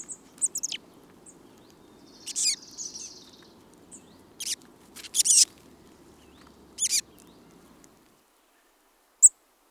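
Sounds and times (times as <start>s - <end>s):
chestnut-backed chickadee high thin calls and buzzy phrase: 0.0s - 8.1s
soft low hum: 0.0s - 8.1s.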